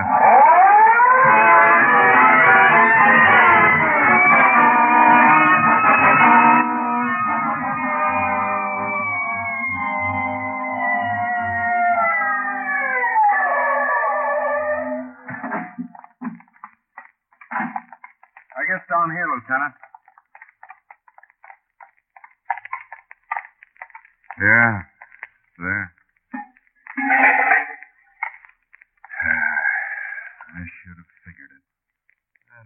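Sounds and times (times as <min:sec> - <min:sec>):
police car siren wailing: 0:00.0 - 0:16.1
knocks and clatters: 0:15.3 - 0:29.2.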